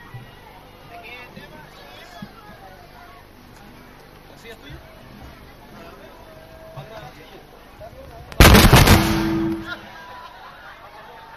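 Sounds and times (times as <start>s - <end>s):
firecrackers exploding: 8.4s - 9.9s.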